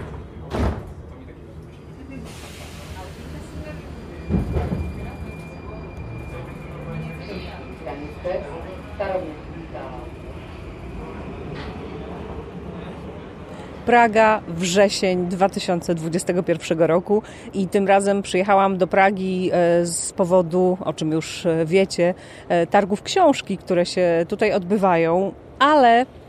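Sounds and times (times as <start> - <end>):
voices murmuring: 0.0 - 14.4
metro train rumbling with a faint high whine in Prague: 0.0 - 26.2
speech: 13.9 - 26.2.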